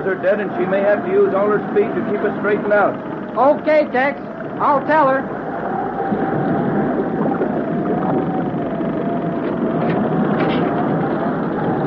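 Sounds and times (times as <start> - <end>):
speech: 0.0 - 6.3
churning storm water around a boat tossing at sea: 0.0 - 11.8
steady droning hum: 0.0 - 11.8
storm wind at sea: 0.0 - 11.8.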